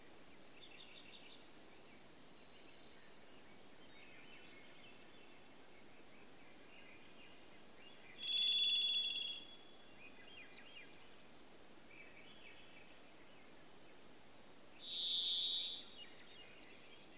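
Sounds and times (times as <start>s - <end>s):
varied thrush singing buzzy whistles in Denali, Alaska: 2.2s - 3.4s, 8.1s - 11.2s, 14.8s - 17.1s.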